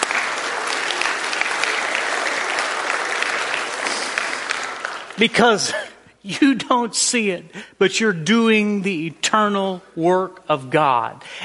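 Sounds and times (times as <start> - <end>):
church audience applauding: 0.0 - 5.6
speech: 5.2 - 11.4.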